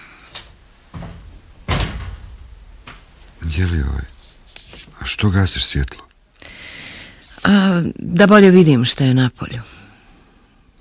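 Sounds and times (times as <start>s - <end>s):
window being opened on a stormy day: 0.3s - 3.2s
window rattling: 0.4s - 4.0s
speech: 3.5s - 4.2s, 5.1s - 6.1s, 7.5s - 9.7s.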